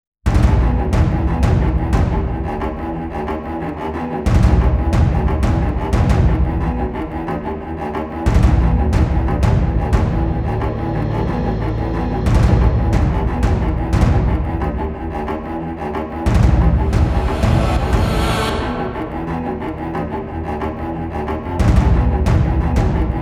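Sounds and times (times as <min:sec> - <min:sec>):
drums: 0:00.3 - 0:02.8, 0:04.3 - 0:07.0, 0:08.3 - 0:11.4, 0:12.0 - 0:15.0, 0:16.3 - 0:19.2, 0:21.6 - 0:23.2
tense dramatic building film trailer cello music: 0:00.3 - 0:23.2.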